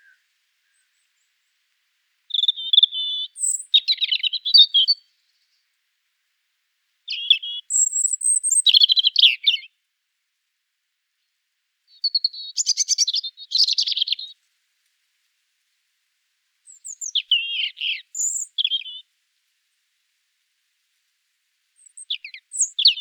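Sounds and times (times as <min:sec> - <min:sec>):
European robin Erithacus rubecula singing tinkling warbled notes and trills: 0:00.0 - 0:01.3, 0:02.3 - 0:05.6, 0:07.1 - 0:09.7, 0:11.9 - 0:14.4, 0:16.6 - 0:19.0, 0:21.8 - 0:23.0.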